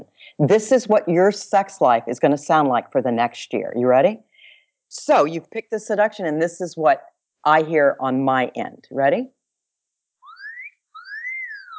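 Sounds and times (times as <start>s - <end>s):
speech: 0.4s - 4.3s, 4.9s - 9.4s
wolf whistle: 10.2s - 11.7s.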